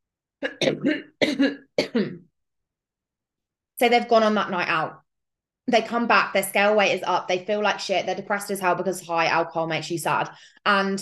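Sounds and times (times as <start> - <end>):
speech: 0.4 - 2.2, 3.8 - 5.0, 5.7 - 11.0
person coughing after choking on their own breath: 0.4 - 2.3.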